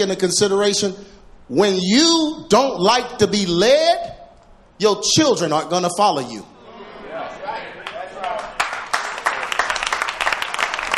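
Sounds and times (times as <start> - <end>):
speech: 0.0 - 4.2, 4.8 - 6.5
hand claps: 7.8 - 10.9.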